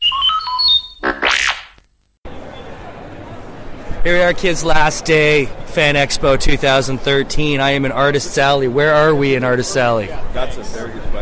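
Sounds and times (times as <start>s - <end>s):
robot electronic beeps and warbling chirps: 0.0s - 1.8s
noisy crowded room: 2.3s - 11.2s
speech: 4.0s - 11.2s.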